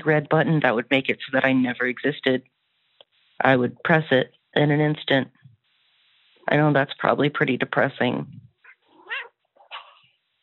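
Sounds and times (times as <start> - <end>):
speech: 0.0 - 2.6, 3.4 - 5.4, 6.5 - 8.4
cat meowing: 8.6 - 10.0.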